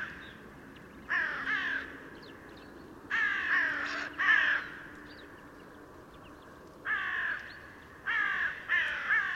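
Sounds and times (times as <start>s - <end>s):
faint background hum: 0.0s - 9.3s
carrion crow cawing, Corvus corone: 1.1s - 2.0s, 3.1s - 4.9s, 6.8s - 9.3s.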